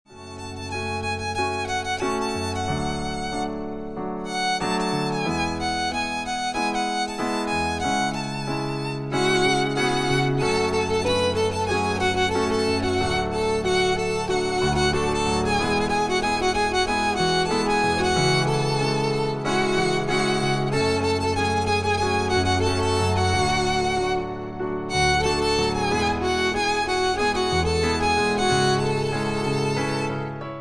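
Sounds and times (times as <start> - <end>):
violin: 0.0 - 30.5
piano: 0.1 - 30.5.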